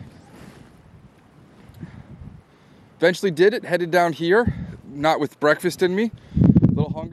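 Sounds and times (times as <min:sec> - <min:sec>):
cold outdoor wind buffeting the microphone on a muddy bank: 0:00.0 - 0:02.5, 0:04.4 - 0:07.1
speech: 0:03.0 - 0:06.4.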